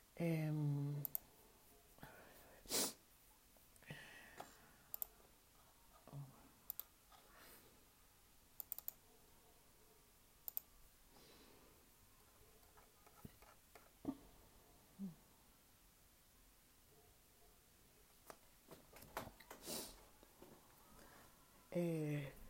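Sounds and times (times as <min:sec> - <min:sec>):
soft room hiss: 0:00.0 - 0:22.4
speech: 0:00.2 - 0:01.2, 0:21.8 - 0:22.0
computer keyboard clicks: 0:04.9 - 0:05.1, 0:06.7 - 0:06.9, 0:08.6 - 0:09.0.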